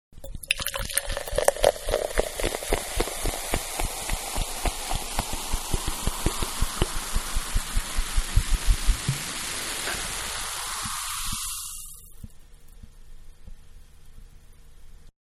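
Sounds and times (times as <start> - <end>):
liquid pouring from a 2 liter bottle into a glass: 0.2 - 12.1.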